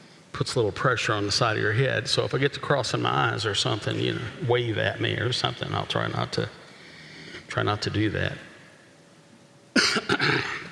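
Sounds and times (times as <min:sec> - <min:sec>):
speech: 0:00.4 - 0:06.6, 0:07.5 - 0:08.5, 0:10.0 - 0:10.6
person with a slight morning cough coughing: 0:09.8 - 0:10.6.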